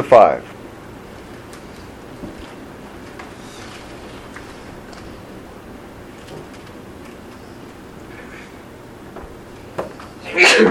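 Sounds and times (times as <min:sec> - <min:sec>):
speech: 0:00.0 - 0:00.6, 0:10.4 - 0:10.7
sneeze: 0:10.2 - 0:10.7.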